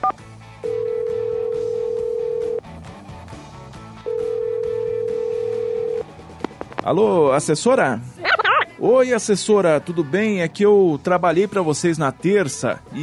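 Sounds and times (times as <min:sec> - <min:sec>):
telephone on a studio line ringing after being dialed: 0:00.0 - 0:02.6, 0:04.1 - 0:06.0
speech: 0:06.9 - 0:08.1, 0:08.8 - 0:13.0.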